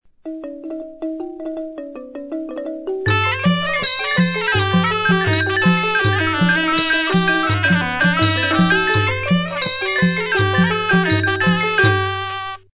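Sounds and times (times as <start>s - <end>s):
Cambodian music ensemble playing: 3.1s - 12.6s.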